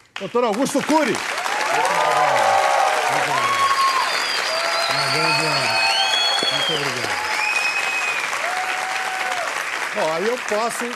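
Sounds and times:
speech: 0.2s - 1.9s, 3.1s - 3.6s, 4.9s - 5.7s, 6.7s - 7.3s, 10.0s - 10.9s
studio audience applauding: 0.2s - 10.9s
studio audience voices calling out and whooping: 1.4s - 9.6s.

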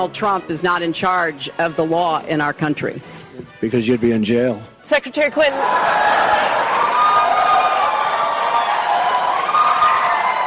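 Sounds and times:
speech: 0.0s - 6.6s
large debate audience applauding and cheering: 5.5s - 10.4s.

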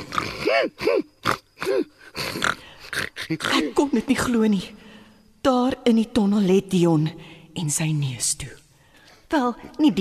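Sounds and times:
speech: 0.0s - 2.6s, 3.3s - 4.8s, 5.4s - 8.6s, 9.3s - 9.9s
pig grunting and snorting: 0.0s - 3.7s.

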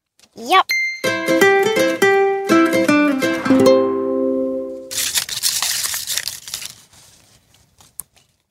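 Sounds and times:
speech: 0.4s - 0.8s
short melodic jingle of stepped tones: 0.7s - 4.9s
paper slips rummaged in a quiz question bucket: 4.9s - 8.4s.

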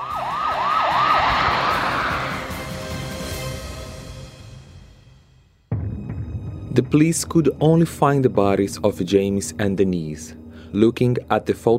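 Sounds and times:
rumbling traffic: 0.0s - 3.6s
emergency siren wailing: 0.0s - 3.7s
speech: 6.8s - 11.7s.

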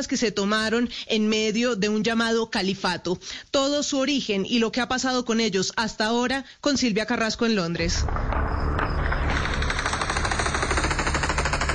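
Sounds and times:
speech: 0.0s - 9.0s
rapid bursts of celebratory automatic gunfire fired into the air: 9.3s - 11.7s.

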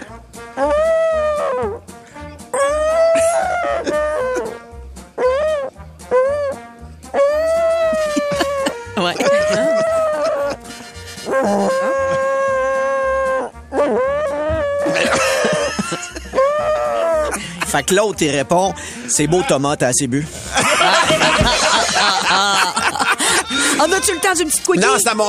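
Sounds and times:
person imitating whale calls: 0.6s - 1.8s, 2.5s - 4.6s, 5.2s - 10.6s, 11.3s - 15.7s, 16.3s - 17.4s
laughter: 3.1s - 4.5s, 7.7s - 12.4s, 14.8s - 18.2s, 20.4s - 25.0s
speech: 17.8s - 20.4s, 23.8s - 25.2s.

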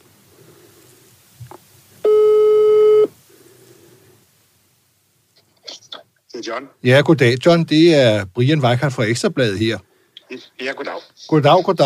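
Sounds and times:
telephone ringing tone: 2.0s - 3.1s
speech: 6.4s - 11.8s.

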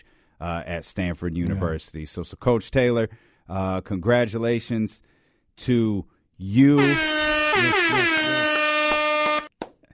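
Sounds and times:
speech: 0.4s - 8.4s
air horn sound effect blasts: 6.8s - 9.5s.

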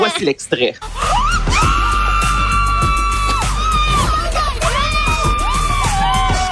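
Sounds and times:
laughter: 0.0s - 1.6s
speech: 0.1s - 1.1s
women screaming and cheering: 0.9s - 6.4s
noisy excited crowd: 1.0s - 6.4s.

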